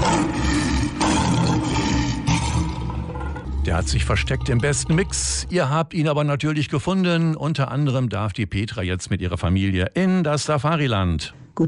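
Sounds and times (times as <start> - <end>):
lion roaring: 0.0 - 5.6
speech: 3.7 - 11.6.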